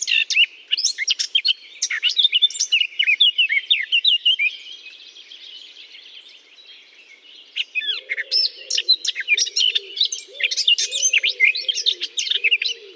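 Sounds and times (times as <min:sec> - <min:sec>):
Eurasian blackcap singing from a holly bush: 0:00.0 - 0:04.6, 0:07.4 - 0:12.9.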